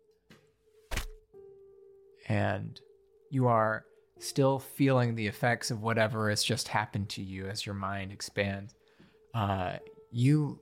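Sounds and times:
bow shot thud: 0.9s - 1.2s
speech: 2.3s - 10.6s.

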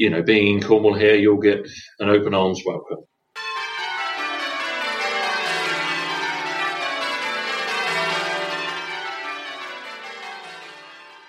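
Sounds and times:
speech: 0.0s - 3.5s
church bells pealing in overlapping tones: 3.4s - 11.2s.

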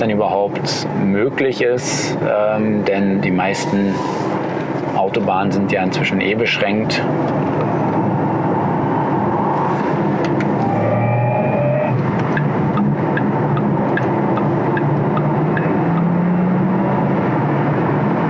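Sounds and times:
speech: 0.0s - 7.8s
car driving fast on a German motorway: 0.0s - 18.2s.

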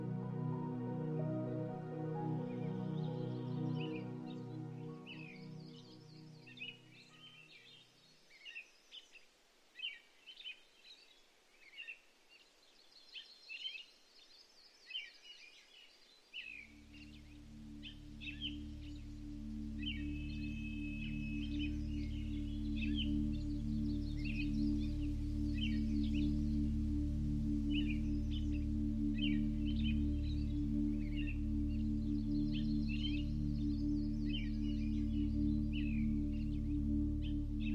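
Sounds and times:
birds chirping in a park on a clear cool spring morning in Alaska: 0.0s - 37.7s.

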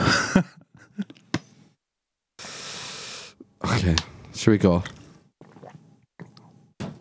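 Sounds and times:
speech: 3.8s - 5.0s
person gulping a drink of water: 4.8s - 6.9s.

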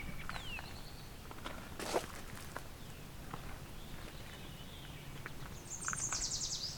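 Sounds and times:
Baltimore oriole whistled song: 0.0s - 1.1s, 3.8s - 6.7s
outdoor rustle: 0.0s - 6.7s
crunching footsteps: 0.1s - 6.2s.

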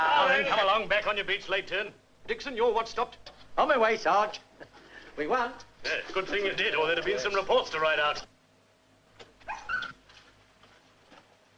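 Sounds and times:
speech: 0.0s - 8.3s
dog whimpering: 9.4s - 10.0s.

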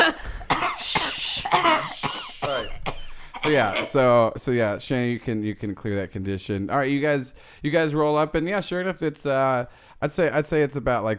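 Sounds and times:
person coughing: 0.0s - 4.0s
speech: 3.5s - 11.1s.

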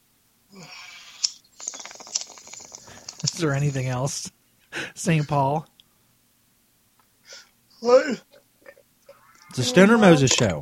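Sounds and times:
speech: 3.4s - 4.4s, 5.0s - 5.7s, 7.8s - 8.3s, 9.6s - 10.6s
goat bleating: 9.2s - 10.4s.

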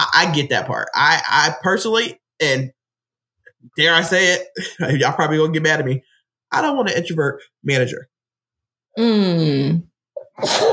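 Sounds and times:
speech: 0.2s - 2.8s, 3.6s - 8.1s, 9.0s - 10.7s
loud sneeze with drawn-in breath: 10.2s - 10.7s.

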